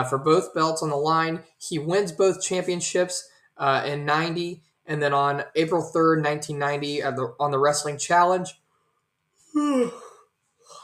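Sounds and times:
speech: 0:00.0 - 0:08.6, 0:09.5 - 0:10.0
person yawning: 0:09.5 - 0:10.8.

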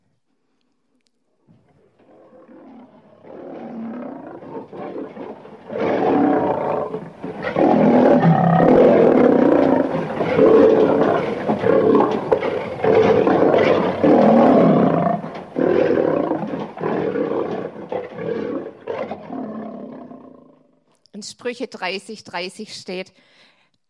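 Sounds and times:
lion roaring: 0:01.6 - 0:20.7
speech: 0:21.5 - 0:23.4.

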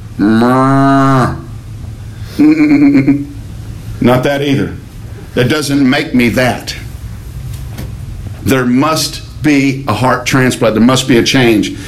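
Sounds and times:
speech: 0:00.2 - 0:00.9, 0:02.4 - 0:03.3, 0:04.0 - 0:06.8, 0:08.4 - 0:11.8
cow mooing: 0:00.2 - 0:01.5.

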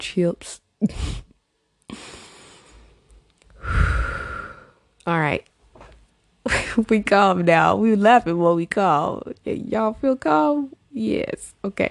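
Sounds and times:
speech: 0:00.0 - 0:01.3, 0:05.0 - 0:05.5, 0:06.4 - 0:11.8
group of people breathing deeply: 0:01.9 - 0:04.8.

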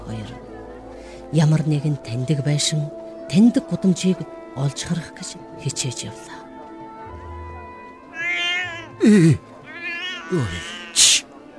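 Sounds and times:
speech: 0:01.3 - 0:06.3, 0:09.0 - 0:09.5, 0:10.3 - 0:11.3
cat meowing: 0:08.1 - 0:09.0, 0:09.6 - 0:11.2.

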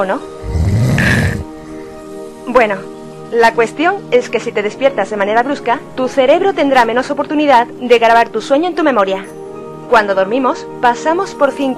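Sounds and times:
speech: 0:00.0 - 0:01.2, 0:02.5 - 0:11.7
person snoring: 0:00.4 - 0:02.0
quiet breathing: 0:01.2 - 0:02.4.

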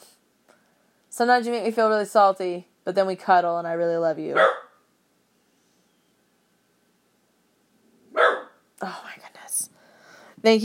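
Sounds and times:
speech: 0:01.2 - 0:04.6, 0:10.4 - 0:10.6
pet dog barking: 0:04.4 - 0:04.8, 0:08.1 - 0:08.6.

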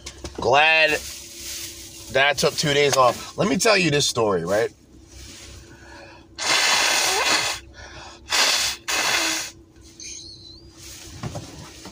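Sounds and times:
speech: 0:00.4 - 0:01.2, 0:02.1 - 0:04.8
rustling: 0:00.9 - 0:02.8, 0:10.6 - 0:11.9
quieter sniffling: 0:05.5 - 0:10.1
loud nose blowing: 0:06.4 - 0:07.7, 0:08.3 - 0:09.6.

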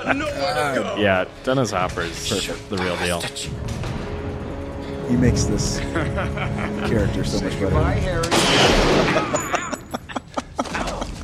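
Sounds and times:
speech: 0:00.1 - 0:03.9, 0:05.1 - 0:09.6
laughter: 0:05.4 - 0:07.7, 0:08.6 - 0:11.2
gunshots in a film scene: 0:08.3 - 0:09.5.

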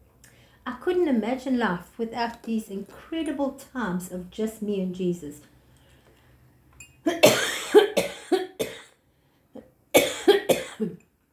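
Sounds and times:
speech: 0:00.8 - 0:05.5, 0:07.0 - 0:07.5
person coughing hard: 0:07.1 - 0:08.9, 0:10.0 - 0:11.0.

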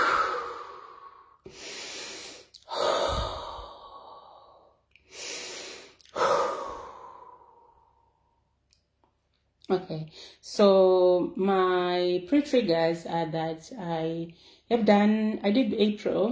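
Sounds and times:
deep breaths in and out: 0:00.0 - 0:08.4
speech: 0:09.7 - 0:16.3.

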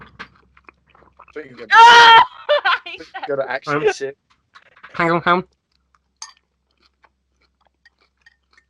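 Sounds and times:
chewing food: 0:00.0 - 0:01.7, 0:04.3 - 0:08.6
speech: 0:01.4 - 0:04.2, 0:05.0 - 0:05.6
laughter: 0:02.2 - 0:04.1.

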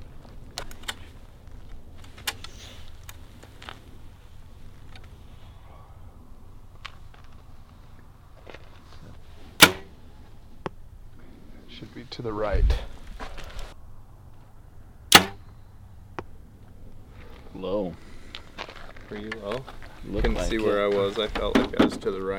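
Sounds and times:
quiet outdoor ambience: 0:00.0 - 0:22.3
arrow loosed from a bow with a sharp snap: 0:02.3 - 0:02.9
speech: 0:12.2 - 0:12.9, 0:19.1 - 0:22.3.

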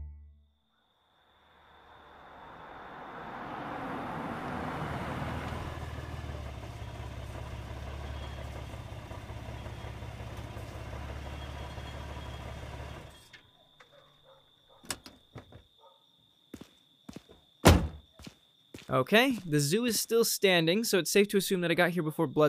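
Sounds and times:
car engine idling: 0:02.1 - 0:13.3
car door thunk: 0:17.7 - 0:18.0
speech: 0:18.9 - 0:22.4.

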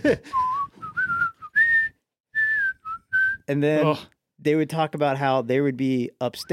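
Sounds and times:
speech: 0:00.0 - 0:00.5, 0:03.5 - 0:06.5
person whistling a tune: 0:00.2 - 0:03.5.

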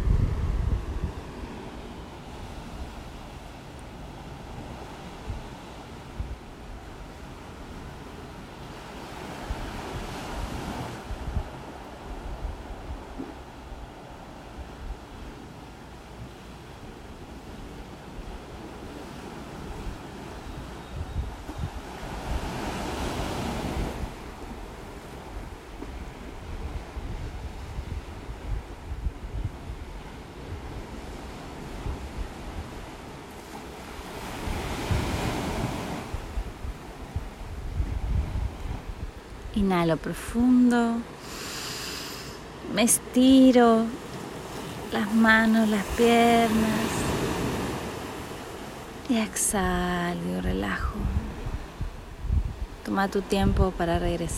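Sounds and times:
wind buffeting: 0:00.0 - 0:07.8, 0:09.2 - 0:15.2, 0:19.4 - 0:33.1, 0:33.7 - 0:40.3, 0:50.8 - 0:53.8
ocean waves rolling in: 0:00.0 - 0:54.3
speech: 0:39.6 - 0:41.1, 0:42.8 - 0:44.0, 0:44.9 - 0:47.0, 0:49.1 - 0:51.1, 0:52.9 - 0:54.3.

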